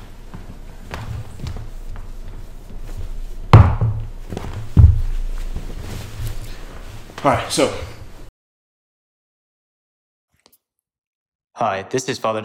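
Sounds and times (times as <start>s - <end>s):
heavy wooden thuds of a chair being moved back: 3.5s - 5.8s
speech: 7.2s - 7.9s, 11.6s - 12.4s.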